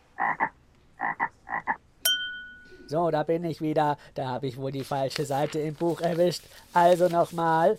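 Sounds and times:
frog croaking: 0.2 - 1.8
bright ringing tone: 2.0 - 3.0
speech: 2.9 - 7.7.

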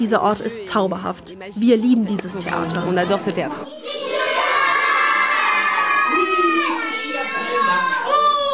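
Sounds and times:
speech: 0.0 - 4.0
crowd of children shouting and cheering at a puppet show: 3.4 - 8.5.

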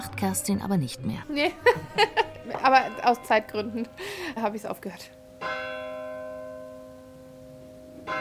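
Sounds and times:
speech: 0.2 - 5.6
laughter: 1.4 - 2.7
church bell striking the quarter hour: 2.4 - 8.1.

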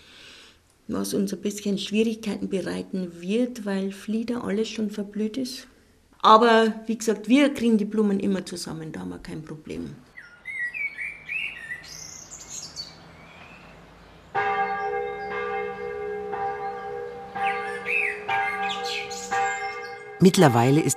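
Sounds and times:
speech: 0.9 - 10.1, 20.2 - 20.9
birds chirping and singing outdoors: 10.1 - 20.9
large parish church bell tolling for morning prayer: 14.3 - 20.9.

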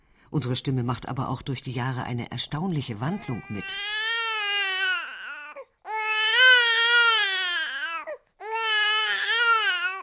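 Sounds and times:
speech: 0.3 - 4.0
newborn baby crying after birth: 3.0 - 10.0.

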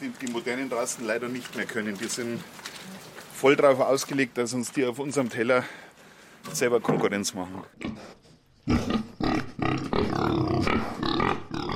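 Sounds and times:
speech: 0.0 - 8.2
huge boar grunting and snorting while shuffling past on a farm: 7.7 - 11.7.

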